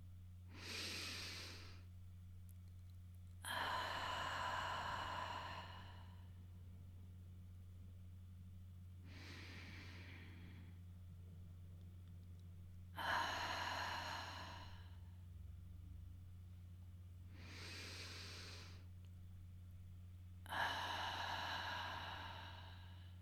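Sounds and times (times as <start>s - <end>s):
steady low hum: 0.0s - 23.1s
slow deep breathing during a guided meditation: 0.5s - 1.8s, 3.4s - 6.4s, 9.0s - 10.9s, 13.0s - 15.2s, 17.3s - 18.9s, 20.4s - 23.1s.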